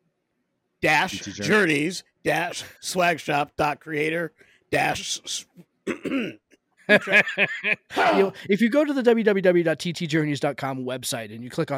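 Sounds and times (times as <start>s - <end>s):
speech: 0.8s - 11.7s
harsh rough cough like clearing the throat: 5.9s - 6.5s
laughter: 6.9s - 8.4s.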